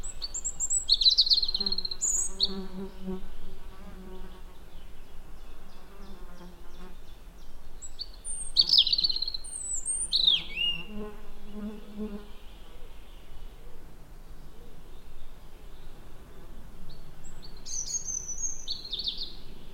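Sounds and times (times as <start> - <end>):
European robin Erithacus rubecula singing: 0.0 - 3.6, 4.2 - 16.0, 16.9 - 19.7
speech: 2.5 - 3.4.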